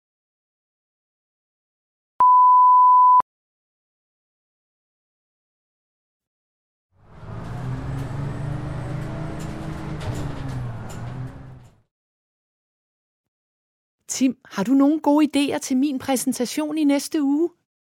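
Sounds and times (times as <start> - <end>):
short electronic beep: 2.2 - 3.2
bus engine rumble and droning hum: 7.0 - 11.8
light rattles and clicks inside a bus: 7.4 - 11.8
speech: 14.1 - 17.6.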